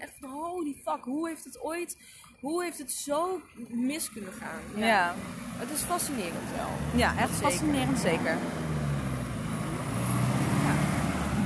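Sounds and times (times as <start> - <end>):
speech: 0.9 - 8.8
car engines droning: 3.4 - 11.4
heavy vehicles rumbling past: 4.0 - 11.4.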